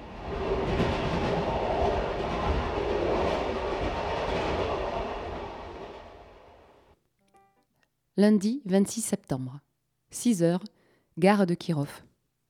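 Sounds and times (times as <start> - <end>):
passenger train running on rails through Siberia, heard on board: 0.0 - 6.9
speech: 8.2 - 12.1.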